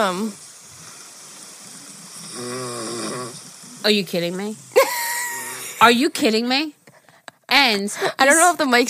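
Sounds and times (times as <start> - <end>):
speech: 0.0 - 0.5, 2.4 - 2.9, 3.8 - 5.0, 5.8 - 6.8, 7.6 - 8.8
man snoring loudly: 0.3 - 3.8, 4.6 - 5.8.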